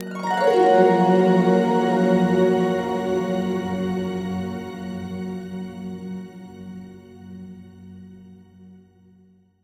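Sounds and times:
harp glissando: 0.0 - 5.0.

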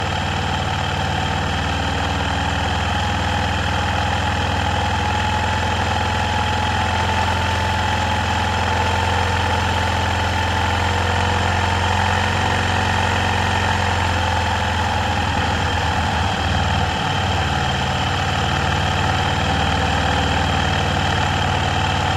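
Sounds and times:
Arctic Cat 650 H1 ATV engine at steady medium rpm: 0.0 - 22.1.

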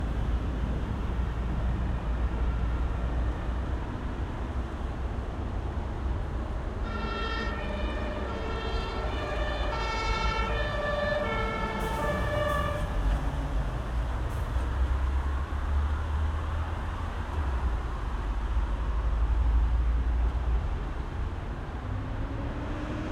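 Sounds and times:
cars passing slowly at a large main road junction in Berlin: 0.0 - 23.1
ambulance siren in Berlin: 6.8 - 13.2.

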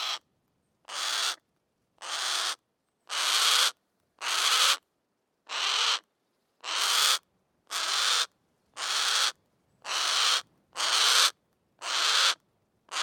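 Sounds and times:
Harris's hawk shrieking: 0.0 - 0.2, 0.9 - 1.4, 2.0 - 4.8, 5.5 - 6.0, 6.6 - 9.3, 9.9 - 13.0.

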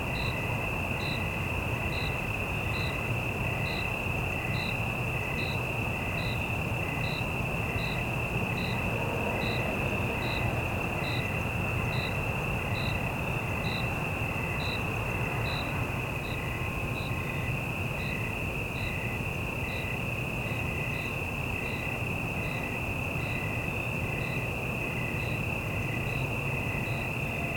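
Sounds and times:
low rumble of city traffic: 0.0 - 27.5
single cricket chirping: 0.0 - 27.5.

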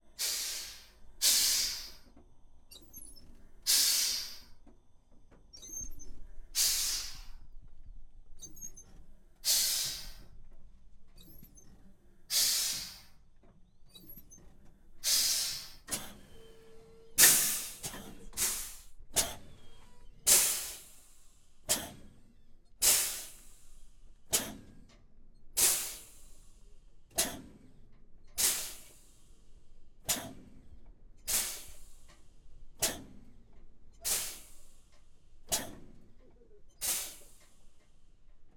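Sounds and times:
URAL 4320 diesel truck air release, exterior: 0.1 - 2.1, 3.6 - 4.5, 6.5 - 7.5, 9.4 - 10.3, 12.3 - 13.2, 15.0 - 22.0, 22.8 - 24.6, 25.6 - 27.5, 28.4 - 30.6, 31.3 - 33.3, 34.0 - 36.0, 36.8 - 38.2.

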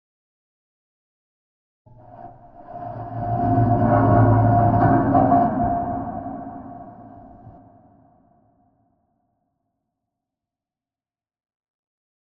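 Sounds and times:
cinematic metallic riser for a trailer: 2.0 - 7.8.

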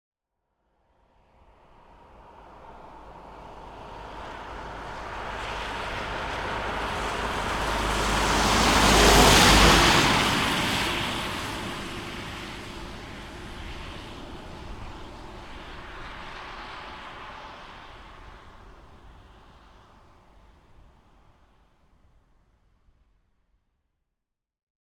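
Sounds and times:
Renault Master 2.3 dCi van passing slowly on wet asphalt with long whoosh: 2.3 - 20.6.

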